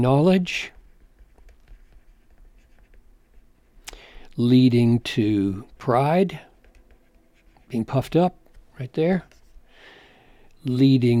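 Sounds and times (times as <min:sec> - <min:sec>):
speech: 0:00.0 - 0:00.8, 0:04.4 - 0:06.5, 0:07.7 - 0:09.4, 0:10.6 - 0:11.1
writing on a board while sketching a diagram: 0:00.2 - 0:03.8, 0:06.4 - 0:08.2.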